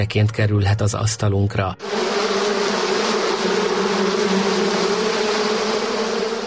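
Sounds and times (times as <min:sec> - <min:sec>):
speech: 0:00.0 - 0:02.4
many honeybees buzzing together: 0:01.8 - 0:06.4.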